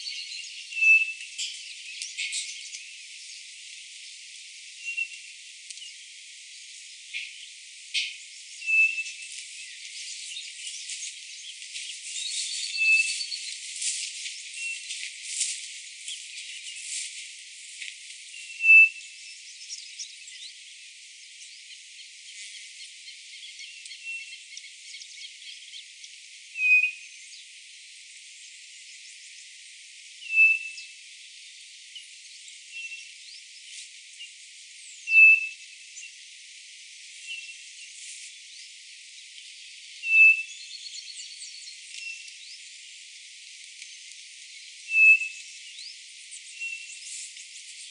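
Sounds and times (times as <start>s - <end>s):
Nothura boraquira calling: 0.0s - 2.7s, 8.0s - 13.6s, 18.4s - 19.1s, 26.6s - 27.0s, 30.3s - 30.9s, 35.1s - 35.6s, 40.0s - 42.4s, 44.9s - 45.5s, 46.4s - 47.1s.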